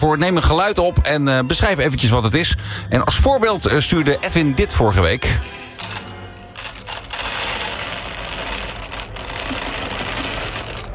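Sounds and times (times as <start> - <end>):
speech: 0.0 - 5.6
coffee beans pouring into a coffee grinder: 5.4 - 10.9.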